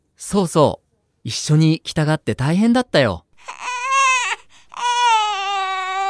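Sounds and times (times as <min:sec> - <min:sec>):
speech: 0:00.2 - 0:03.6
baby crying: 0:03.4 - 0:06.0.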